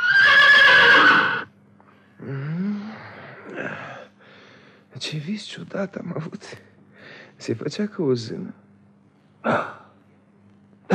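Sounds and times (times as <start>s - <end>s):
horse neighing loudly: 0.0s - 1.5s
speech: 5.0s - 6.7s, 7.4s - 8.6s, 9.4s - 9.8s.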